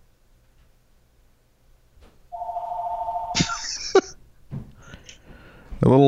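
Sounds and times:
telephone ringing with a sustained electronic tone: 0:02.3 - 0:03.6
laughter: 0:03.4 - 0:04.2
speech: 0:05.9 - 0:06.0.

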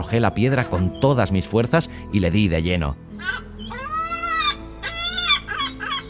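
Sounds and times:
speech: 0:00.0 - 0:03.5
seagull with a broken wing squawking after being struck by a stone: 0:03.0 - 0:06.0.

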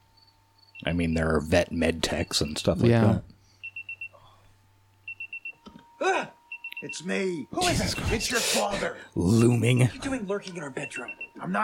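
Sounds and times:
alarm clock beeping in a bedroom: 0:00.7 - 0:02.7, 0:03.6 - 0:04.2, 0:05.0 - 0:05.6, 0:06.5 - 0:08.4, 0:09.3 - 0:11.6
speech: 0:00.8 - 0:03.3, 0:06.8 - 0:11.6.

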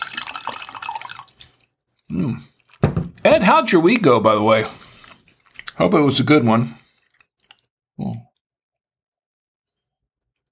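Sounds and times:
wine pouring into a glass: 0:00.0 - 0:01.6
speech: 0:02.1 - 0:02.5, 0:03.3 - 0:04.8, 0:05.8 - 0:06.8.

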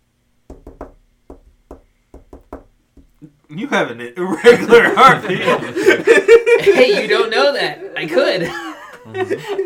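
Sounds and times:
knocking on a door: 0:00.5 - 0:03.2
speech: 0:03.5 - 0:09.6
laughter: 0:04.3 - 0:09.6.

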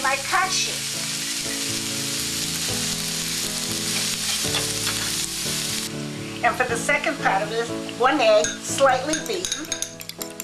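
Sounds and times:
mushrooms sautéing in a pan: 0:00.0 - 0:09.9
music bed of held notes: 0:01.0 - 0:10.4
speech: 0:06.5 - 0:09.8.

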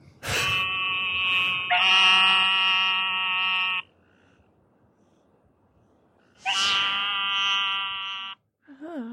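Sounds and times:
eastern narrow-mouthed toad giving nasal buzzing bleats: 0:00.3 - 0:03.9, 0:06.4 - 0:08.4.

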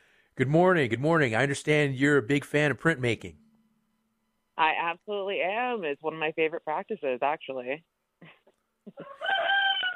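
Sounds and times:
speech: 0:00.4 - 0:03.4, 0:04.6 - 0:09.3
rooster crowing: 0:09.0 - 0:09.9.

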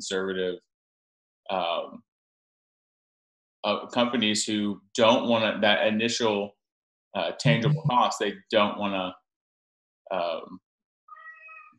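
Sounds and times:
speech: 0:00.0 - 0:00.7, 0:01.5 - 0:02.1, 0:03.6 - 0:09.2, 0:10.1 - 0:10.6
pet cat meowing: 0:11.1 - 0:11.7.

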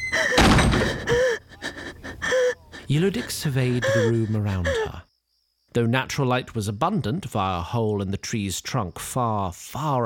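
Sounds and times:
door creak and bump: 0:00.0 - 0:01.2
heavy door creaking and slamming shut: 0:00.3 - 0:01.1
speech: 0:02.9 - 0:05.1, 0:05.8 - 0:10.0.

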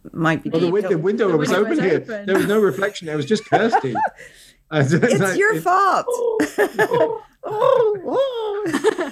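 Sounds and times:
speech: 0:00.2 - 0:09.1
laughter: 0:00.9 - 0:09.1
person imitating pigeon coos: 0:06.0 - 0:08.8.

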